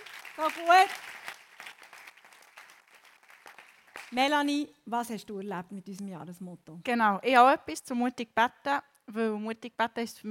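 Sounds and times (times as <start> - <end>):
audience applause: 0.0 - 4.1
speech: 0.4 - 1.1, 4.1 - 10.2.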